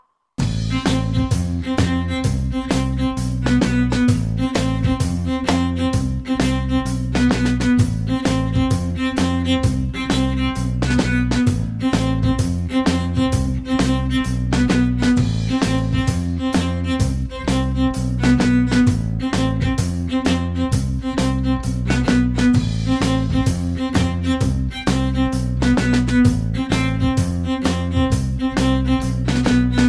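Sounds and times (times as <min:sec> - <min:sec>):
cello section playing: 0:00.4 - 0:29.8.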